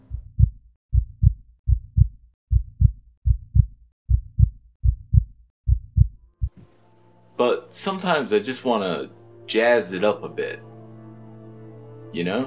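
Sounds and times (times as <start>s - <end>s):
amplified human heartbeat: 0.0s - 6.6s
speech: 7.4s - 10.7s, 12.1s - 12.4s.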